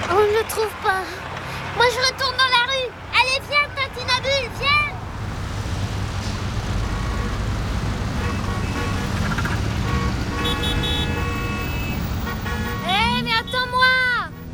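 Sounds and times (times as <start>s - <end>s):
car engine roaring in street traffic: 0.0s - 14.5s
loud continuous street traffic: 0.0s - 14.5s
speech: 0.4s - 2.4s
horn-like tones: 8.1s - 14.5s.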